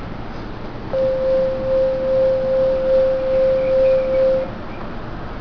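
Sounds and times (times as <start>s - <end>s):
E231 buzzer: 0.9s - 4.5s.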